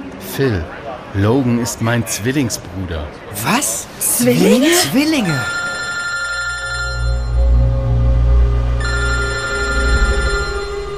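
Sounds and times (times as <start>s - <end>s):
speech: 0.4s - 5.6s
mobile phone ringing with electronic ringtone: 4.8s - 7.6s, 8.8s - 10.9s.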